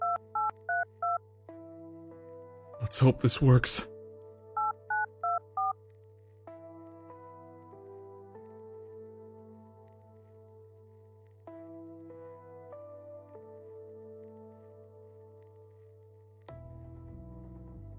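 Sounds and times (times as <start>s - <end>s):
phone keypad dialing beeps: 0.0s - 1.2s, 4.6s - 5.8s
speech: 2.8s - 3.9s.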